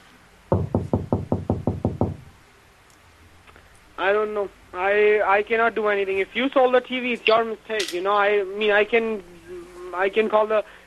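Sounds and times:
knocking on a bathroom door: 0.5s - 2.3s
speech: 4.0s - 9.3s, 10.0s - 10.8s.

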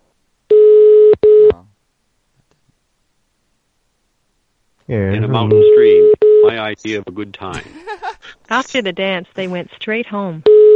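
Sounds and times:
electronic beeps from pressing numbers on a telephone keypad: 0.5s - 1.5s, 5.5s - 6.5s, 10.5s - 10.7s
speech: 4.9s - 7.9s, 8.5s - 10.5s
laughter: 7.5s - 8.4s.

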